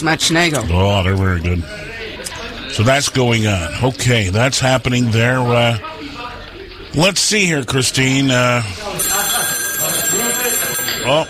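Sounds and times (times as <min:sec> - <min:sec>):
speech: 0:00.0 - 0:02.0, 0:02.7 - 0:05.9, 0:06.9 - 0:09.1, 0:11.1 - 0:11.2
telephone ringing: 0:08.8 - 0:11.2.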